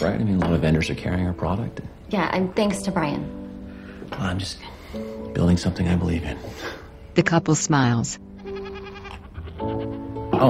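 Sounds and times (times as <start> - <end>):
speech: 0.0 - 3.4, 4.1 - 8.3, 9.6 - 10.4
goats bleating: 8.4 - 10.3.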